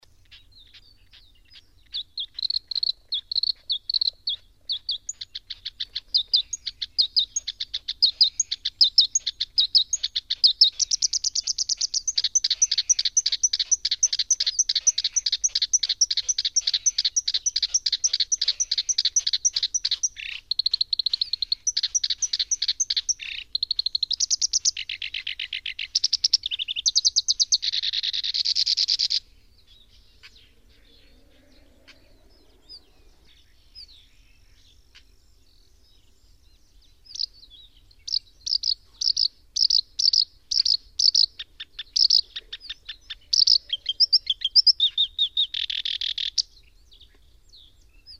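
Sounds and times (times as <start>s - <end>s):
koyosikiri bird calling: 0.0s - 35.2s, 38.0s - 48.1s.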